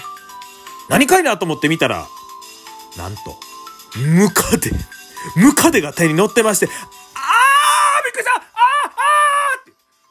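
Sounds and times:
speech: 0:00.9 - 0:02.2, 0:03.0 - 0:07.0
woman screaming in fright: 0:07.2 - 0:09.7.

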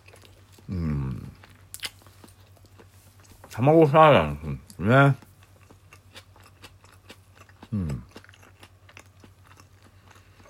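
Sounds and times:
biting and chewing an egg salad sandwich: 0:00.0 - 0:03.6, 0:04.6 - 0:10.4
person humming: 0:00.7 - 0:01.4, 0:07.7 - 0:08.1
speech: 0:03.6 - 0:05.2.

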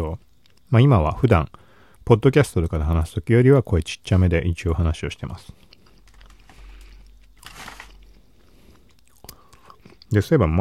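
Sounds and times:
speech: 0:00.0 - 0:05.6, 0:10.1 - 0:10.5
chewing and crunching of edamame: 0:05.3 - 0:10.2.

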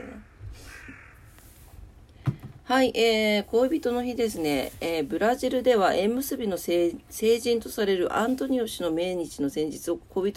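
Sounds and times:
crow cawing outdoors: 0:00.0 - 0:01.4
brief knock: 0:02.2 - 0:02.6
speech: 0:02.7 - 0:10.3.

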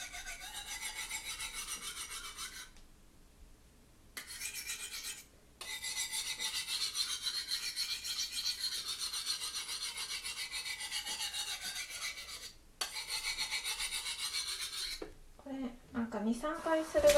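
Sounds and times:
kitchen knife being sharpened with rasping strokes: 0:00.0 - 0:02.7, 0:04.2 - 0:15.0
person speaking: 0:15.6 - 0:17.1.

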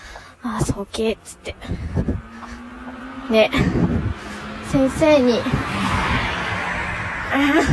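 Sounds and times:
speech: 0:00.4 - 0:02.3, 0:03.3 - 0:05.7, 0:07.3 - 0:07.7
car rushing past outdoors with road noise roar: 0:01.6 - 0:07.7.

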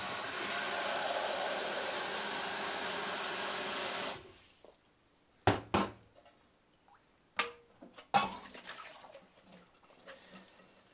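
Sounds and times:
kitchen tap running while a beer tumbler is washed at the sink: 0:00.0 - 0:04.2.

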